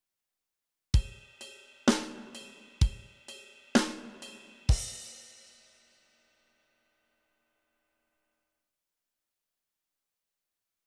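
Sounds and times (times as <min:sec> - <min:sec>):
drums playing in training: 0:01.0 - 0:05.8.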